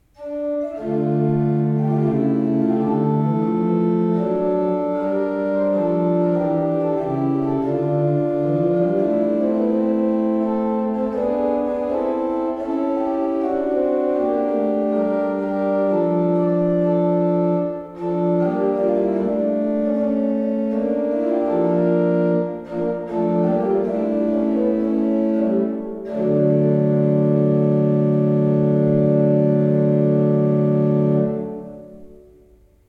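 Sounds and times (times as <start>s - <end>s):
used Stahlhuth pipe organ: 0.0s - 32.7s.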